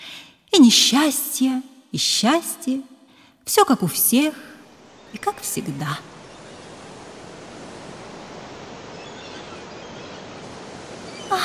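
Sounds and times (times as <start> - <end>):
speech: 0.7 - 2.9, 3.5 - 4.5, 5.1 - 6.1
broad wash of sea surf: 4.6 - 11.4.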